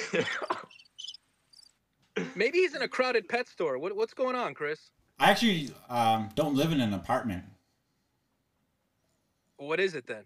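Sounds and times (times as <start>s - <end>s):
speech: 0.1s - 0.6s, 2.4s - 7.5s, 9.6s - 10.2s
crickets chirping in short high-pitched trilling bursts: 0.4s - 1.8s.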